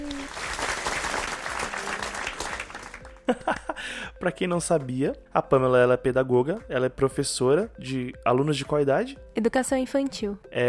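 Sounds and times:
applause from a small group welcoming a guest: 0:00.0 - 0:03.7
laughter: 0:03.2 - 0:03.8
speech: 0:03.3 - 0:10.6.

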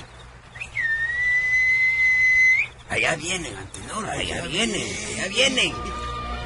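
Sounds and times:
person whistling a call: 0:00.6 - 0:02.8
speech: 0:02.9 - 0:06.0.

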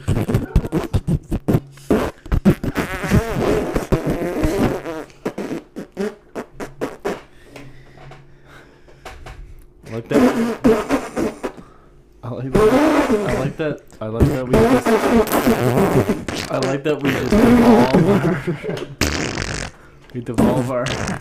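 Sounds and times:
person blowing wet sputtering raspberry noises imitating liquid diarrhea and farts: 0:00.0 - 0:07.3, 0:10.1 - 0:11.6, 0:12.5 - 0:13.6, 0:14.2 - 0:18.4, 0:19.0 - 0:19.8, 0:20.4 - 0:21.1
laughter: 0:18.0 - 0:19.0.

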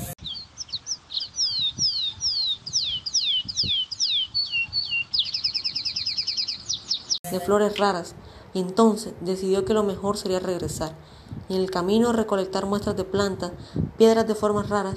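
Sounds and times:
exotic birds chirping: 0:00.0 - 0:08.0
speech: 0:07.3 - 0:14.9.

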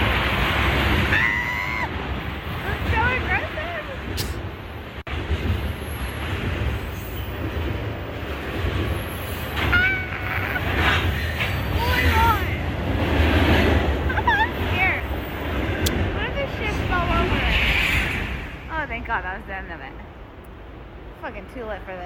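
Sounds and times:
train rumbling overhead with metallic squeals and rattling: 0:00.0 - 0:22.0.

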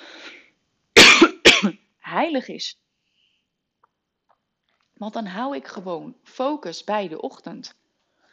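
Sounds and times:
person coughing: 0:01.0 - 0:01.8
speech: 0:01.6 - 0:02.8, 0:05.0 - 0:07.8.

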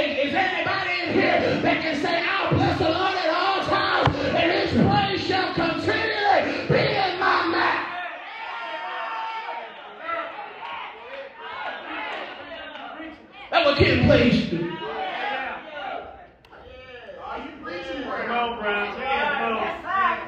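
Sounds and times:
large audience shouting and cheering: 0:00.0 - 0:20.2
speech: 0:13.8 - 0:14.4.

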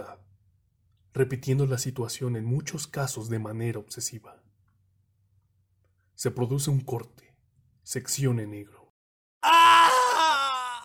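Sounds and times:
speech: 0:01.2 - 0:04.5, 0:06.2 - 0:07.3, 0:07.9 - 0:08.8
person screaming in pain: 0:09.4 - 0:10.8.

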